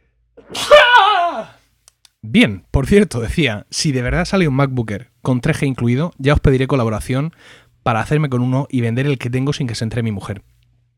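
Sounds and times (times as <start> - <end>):
person sneezing: 0.4 - 1.5
speech: 2.3 - 10.5.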